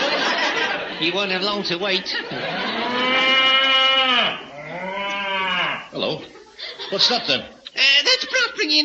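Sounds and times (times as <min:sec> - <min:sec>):
laughter: 0:00.0 - 0:03.8, 0:06.0 - 0:08.6
speech: 0:01.0 - 0:03.3, 0:06.0 - 0:08.8
cow mooing: 0:02.5 - 0:05.9.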